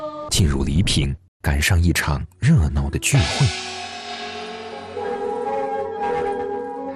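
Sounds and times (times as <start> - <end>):
speech: 0.4 - 3.9
drums beating at village festival: 3.0 - 6.5
loud metallic gongs clanging at village festival: 3.1 - 6.7.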